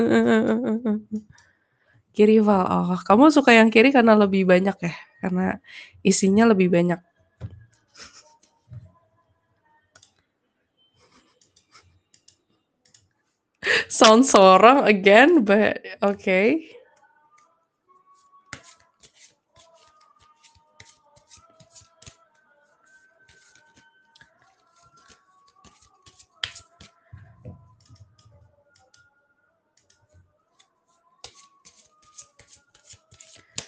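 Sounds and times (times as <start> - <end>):
speech: 0.0 - 1.4, 2.2 - 8.1, 13.6 - 16.8
deck of cards being flipped and shuffled through by hand: 18.5 - 22.2, 22.9 - 27.0, 30.6 - 33.6.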